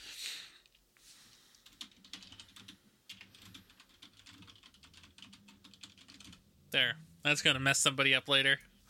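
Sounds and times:
typing on a computer keyboard: 0:01.6 - 0:06.4
speech: 0:06.8 - 0:08.7.

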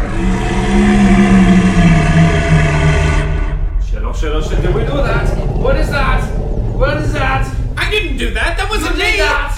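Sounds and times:
deep rumbling dragon roar: 0:00.0 - 0:09.4.

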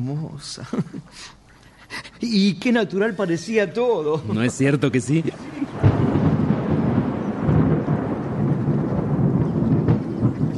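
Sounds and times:
speech: 0:00.0 - 0:05.9
laughter: 0:04.1 - 0:06.3
steady rainfall: 0:04.2 - 0:10.5.

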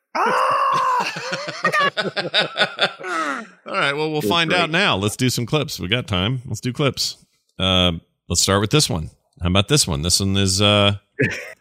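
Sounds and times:
person imitating a high-pitched scream: 0:00.1 - 0:01.2
speech: 0:00.2 - 0:00.8, 0:01.8 - 0:11.5
laughter: 0:00.7 - 0:03.5, 0:04.2 - 0:05.2.

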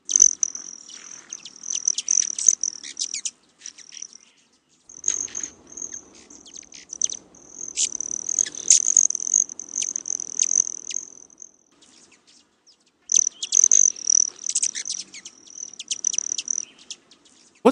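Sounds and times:
male broad-tailed hummingbird wing whistle: 0:00.0 - 0:04.2, 0:04.9 - 0:11.5, 0:13.1 - 0:16.9
male broad-tailed hummingbird chirping: 0:00.0 - 0:12.1, 0:13.1 - 0:17.6.

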